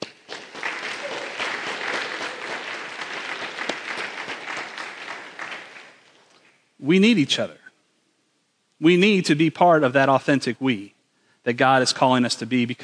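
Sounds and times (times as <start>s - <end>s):
roomful of people clapping: 0.0s - 6.6s
speech: 6.8s - 7.6s, 8.8s - 12.8s.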